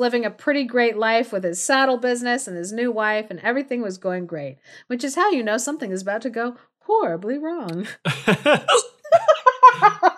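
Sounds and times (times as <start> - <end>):
speech: 0.0 - 10.0
loud voice letting out a hiccuping laugh: 7.8 - 10.0.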